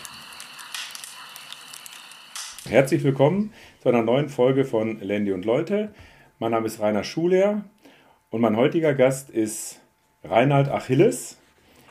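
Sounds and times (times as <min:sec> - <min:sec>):
campfire crackling with pops and snaps: 0:00.0 - 0:02.9
speech: 0:02.7 - 0:07.7, 0:08.3 - 0:11.4.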